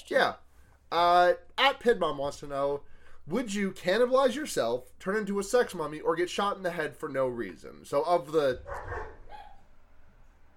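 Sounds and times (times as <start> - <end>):
speech: 0.0 - 9.2
dog barking: 8.6 - 9.7.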